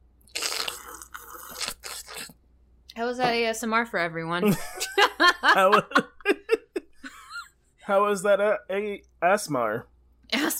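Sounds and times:
loud slurping sip of coffee from a cup: 0.3 - 2.4
speech: 3.0 - 6.1, 7.9 - 9.9
laughter: 4.4 - 7.4.

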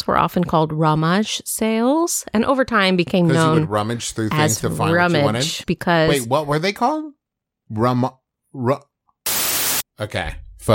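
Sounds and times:
speech: 0.2 - 8.9, 10.0 - 10.7
indistinct voice: 3.3 - 6.4
hissing static noise: 9.3 - 9.8.

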